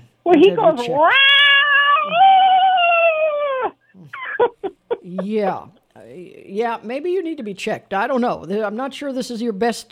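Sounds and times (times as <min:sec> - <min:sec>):
speech: 0:00.2 - 0:01.4, 0:04.0 - 0:09.9
cat yowling loudly: 0:00.6 - 0:04.4.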